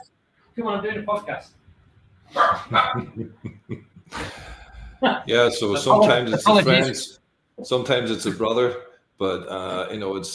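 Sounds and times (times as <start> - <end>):
speech: 0.6 - 1.6, 2.3 - 10.3
higher dog yapping: 2.3 - 3.0
pet dogs barking indoors: 2.3 - 3.2
laughter: 2.6 - 4.5, 5.6 - 7.0.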